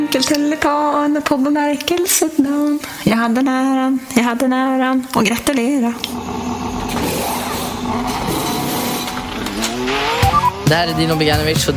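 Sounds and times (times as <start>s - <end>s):
speech: 0.2s - 6.6s, 10.7s - 11.7s
Formula 1 race car engine whine at speed: 6.0s - 11.7s.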